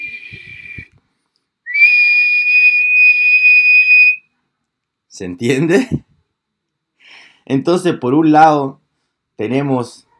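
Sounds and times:
whistling kettle: 0.0s - 1.0s, 1.7s - 4.2s
speech: 5.2s - 6.0s, 7.5s - 8.8s, 9.4s - 10.1s.

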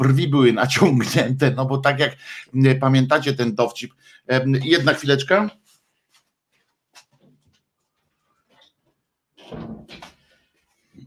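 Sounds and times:
speech: 0.0s - 5.6s
soft rustles: 5.5s - 9.1s.

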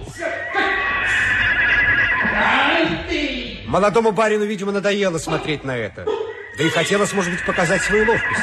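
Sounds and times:
horse whinnying in a long high-pitched call: 0.2s - 2.7s
speech: 3.7s - 8.4s.

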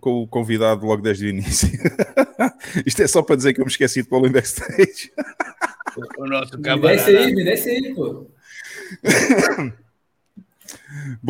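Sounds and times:
speech: 0.0s - 9.8s, 10.7s - 11.2s
laughter: 1.4s - 3.0s, 4.5s - 7.5s, 8.7s - 9.8s
raspy cough or throat-clearing: 9.0s - 9.8s.

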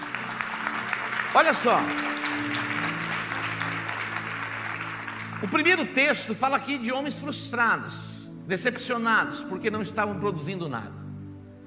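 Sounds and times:
large church audience applauding: 0.0s - 6.1s
speech: 1.3s - 2.7s, 5.4s - 11.0s.

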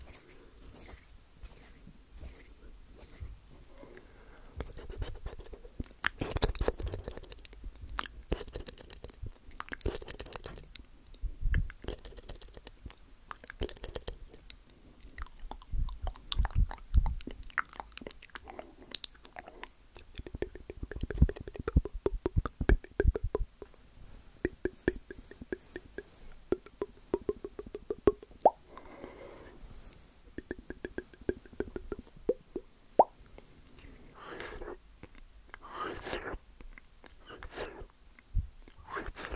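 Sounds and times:
sharp loud mouth pops: 4.6s - 10.8s, 11.5s - 23.8s, 24.4s - 28.6s, 30.4s - 33.2s
wet mouth clicks and smacks: 4.6s - 23.8s, 24.4s - 28.6s, 30.4s - 33.4s, 34.3s - 39.3s.

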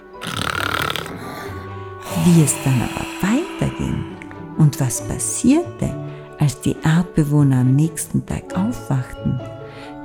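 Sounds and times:
person snoring with a raspy wheeze: 0.0s - 4.3s
speech: 2.2s - 9.6s.

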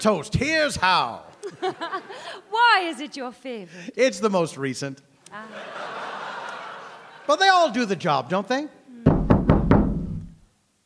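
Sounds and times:
speech: 0.0s - 6.2s, 7.3s - 8.8s
laughter: 1.4s - 2.5s, 5.3s - 8.2s
firm knocking on an upstairs window: 9.1s - 10.2s.

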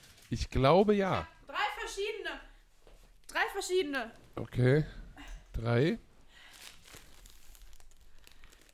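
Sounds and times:
speech: 0.3s - 2.5s, 3.3s - 5.0s, 5.6s - 6.1s
chocolate bar wrapper crinkling: 6.2s - 8.7s.

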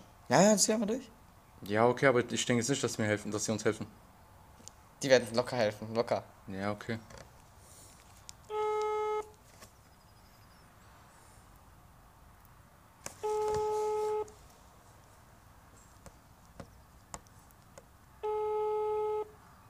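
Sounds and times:
speech: 0.3s - 4.1s, 5.0s - 7.2s
quiet phone line noise: 4.6s - 19.6s
ringback tone beeps during an outgoing phone call: 13.2s - 14.3s, 18.2s - 19.3s.

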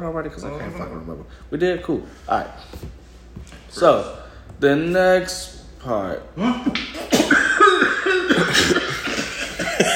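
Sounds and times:
speech: 0.0s - 8.8s
person laughing while smoking weed: 6.4s - 9.9s
harsh hacking coughs from someone smoking weed: 7.0s - 9.9s.

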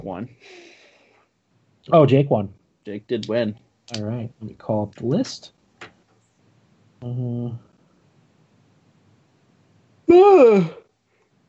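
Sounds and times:
speech: 0.0s - 0.8s, 1.8s - 5.6s, 7.0s - 7.7s, 10.1s - 10.8s
person yawning: 7.0s - 7.6s.

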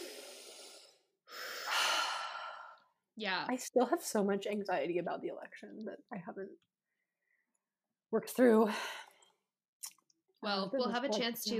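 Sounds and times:
person taking a big breath: 0.0s - 2.9s
speech: 3.2s - 6.7s, 8.1s - 9.0s, 10.4s - 11.5s.

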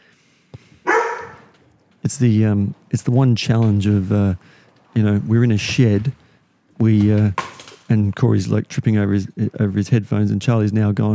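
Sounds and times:
dog barking in a shed: 0.8s - 1.5s
speech: 2.1s - 6.2s, 6.8s - 11.1s.

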